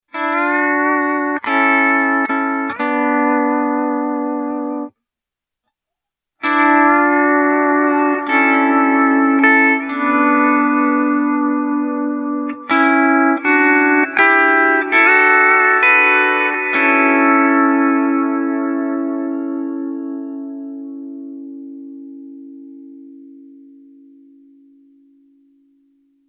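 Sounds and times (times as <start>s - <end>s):
reverse decay pedal steel guitar with reverb: 0.1s - 4.9s, 6.4s - 25.6s.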